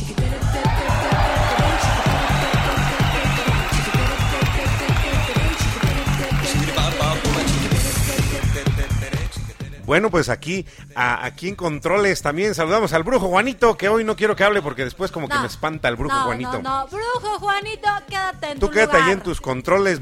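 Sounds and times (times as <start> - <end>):
crowd clapping: 0.6 - 9.8
speech: 9.9 - 19.9.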